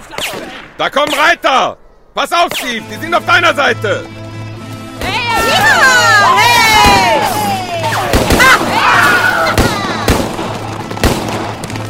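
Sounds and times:
sharp gunshots in a chaotic firefight: 0:00.0 - 0:01.4, 0:07.9 - 0:11.8
speech: 0:00.8 - 0:04.2
people shouting in a firefight: 0:05.0 - 0:10.8.

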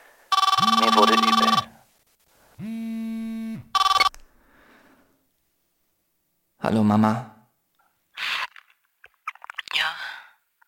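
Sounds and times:
mobile phone ringing: 0:00.3 - 0:01.8, 0:02.6 - 0:04.1
speech: 0:06.7 - 0:07.3.

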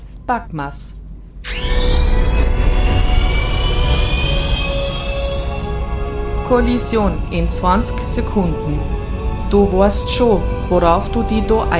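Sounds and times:
speech: 0:00.3 - 0:01.0, 0:06.5 - 0:11.7
high whine of a rescue capsule launching: 0:01.4 - 0:10.7
rescue capsule engine roar at launch: 0:01.4 - 0:11.7.

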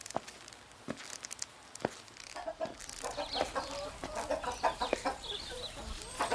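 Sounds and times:
sharp scratchy clicks: 0:00.0 - 0:03.6
chickens clucking: 0:02.3 - 0:06.3.

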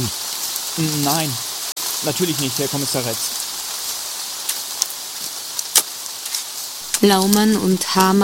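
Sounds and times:
sharper drips and splashes: 0:00.0 - 0:08.2
steady rain falling: 0:00.0 - 0:08.2
speech: 0:00.8 - 0:03.4, 0:07.0 - 0:08.2.

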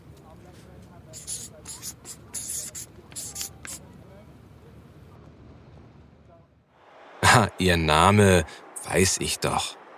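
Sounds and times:
pen scratching out a name: 0:01.1 - 0:03.8
speech: 0:07.4 - 0:09.8.

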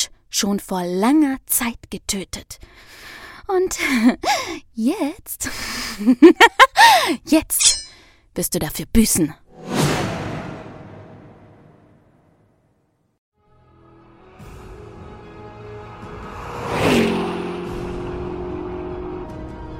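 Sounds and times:
speech: 0:00.4 - 0:09.8
car accelerating as the driver steps on the gas: 0:15.7 - 0:19.7.

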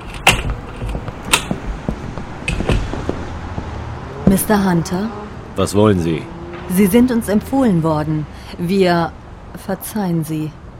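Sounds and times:
door handle and latch clicking as a door is opened: 0:00.0 - 0:01.6
speech: 0:04.3 - 0:10.6.

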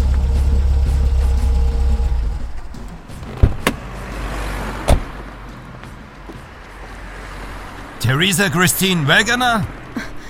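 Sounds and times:
car engine rumbling as the vehicle comes to a stop: 0:00.0 - 0:10.2
sharp clunks: 0:02.6 - 0:03.9, 0:04.8 - 0:05.2
speech: 0:08.1 - 0:10.1.

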